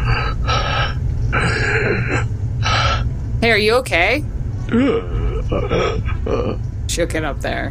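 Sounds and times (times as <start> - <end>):
person imitating ragged laboured breathing of a wounded person: 0.0 - 3.1, 4.7 - 6.6
speech: 3.4 - 7.6.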